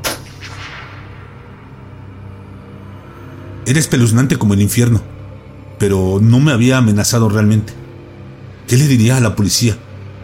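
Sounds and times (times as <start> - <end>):
gunshot fired over a head into woods at night: 0.0 - 1.5
low rumbling decay of a gunshot: 0.0 - 3.2
speech: 3.7 - 5.1, 5.8 - 7.8, 8.7 - 9.9.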